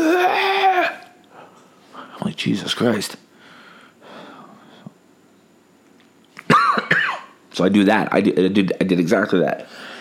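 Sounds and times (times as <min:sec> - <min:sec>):
speech: 0:02.4 - 0:03.3, 0:07.6 - 0:09.9
person breathing: 0:03.3 - 0:05.0, 0:09.7 - 0:10.0
sick person coughing into the crook of arm: 0:06.4 - 0:07.4.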